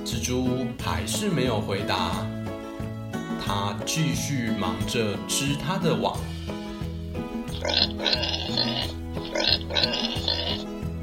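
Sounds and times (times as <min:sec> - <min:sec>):
speech: 0:00.1 - 0:02.4, 0:03.4 - 0:06.6
steady bouncy musical backing: 0:06.4 - 0:10.9
voice imitating pig oink grunts: 0:07.5 - 0:10.7.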